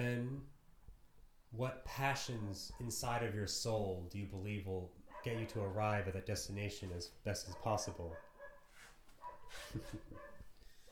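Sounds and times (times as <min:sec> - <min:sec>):
speech: 0:00.0 - 0:00.6, 0:01.5 - 0:08.3, 0:09.5 - 0:10.3
dog barking: 0:05.1 - 0:05.8, 0:07.4 - 0:10.8.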